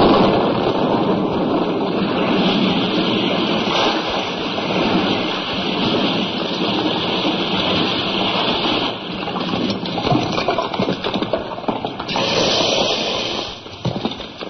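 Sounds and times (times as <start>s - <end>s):
blasting operation explosion at the bridge over the River Tay: 0.0s - 14.2s
debris rattling and pattering down: 7.4s - 14.4s.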